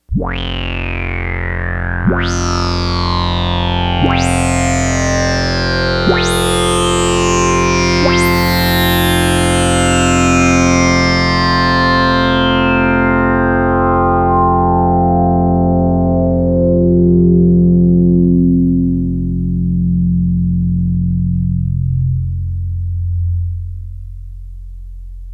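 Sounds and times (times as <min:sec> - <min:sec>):
Prophet 5 analog synthesizer: 0:00.1 - 0:25.3.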